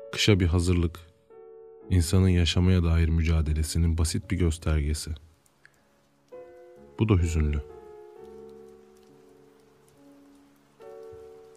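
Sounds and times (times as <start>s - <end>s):
speech: 0.1s - 1.1s, 1.9s - 5.3s, 7.0s - 7.7s
steady rain pattering on a hard surface: 2.4s - 11.5s.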